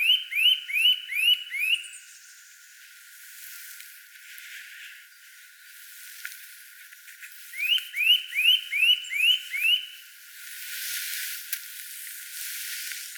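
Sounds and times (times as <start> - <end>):
Eurasian nuthatch Sitta europaea calls: 0.0 - 2.2, 7.5 - 10.0.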